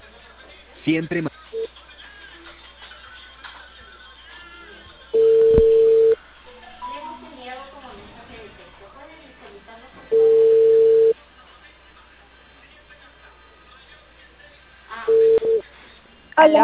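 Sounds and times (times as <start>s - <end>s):
speech: 0.8s - 1.3s
steady telephone beep tone after a call is hung up: 5.2s - 6.2s, 10.1s - 11.2s, 15.1s - 15.6s.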